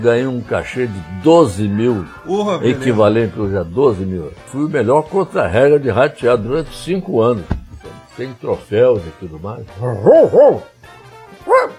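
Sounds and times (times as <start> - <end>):
speech: 0.0 - 7.6, 8.2 - 11.7
man imitating a dog barking: 9.9 - 10.7, 11.5 - 11.7.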